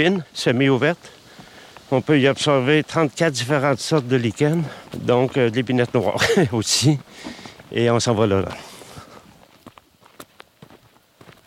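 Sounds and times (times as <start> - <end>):
speech: 0.0 - 1.2, 1.9 - 8.7
footsteps crunching along a trail to an observation site: 0.0 - 11.4
soft outdoor hiss: 0.0 - 11.4
laughter: 6.1 - 6.6.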